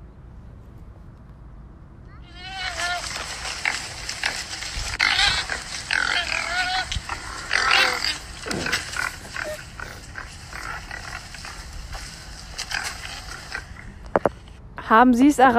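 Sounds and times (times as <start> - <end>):
low steady noise: 0.0 - 15.5
forest wild boar grunting, snorting and squealing: 2.2 - 14.5
speech: 14.9 - 15.5.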